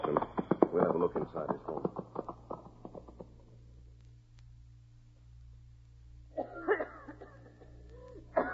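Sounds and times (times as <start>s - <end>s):
low hum: 0.0s - 8.5s
speech: 1.1s - 1.9s
woman coughing: 6.4s - 8.5s.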